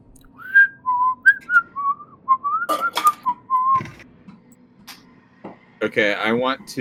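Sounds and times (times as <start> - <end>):
person whistling a lilting tune: 0.4 - 3.8
speech: 5.9 - 6.7.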